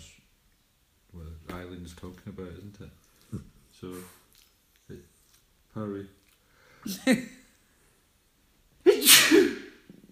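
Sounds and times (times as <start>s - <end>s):
speech: 1.8s - 4.2s, 4.9s - 5.1s, 5.8s - 6.2s, 6.8s - 7.4s
sneeze: 8.8s - 9.9s.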